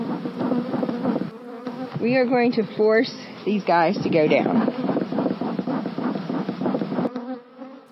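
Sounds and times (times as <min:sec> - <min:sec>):
agitated honeybees buzzing in an open hive: 0:00.0 - 0:07.9
speech: 0:02.0 - 0:04.8.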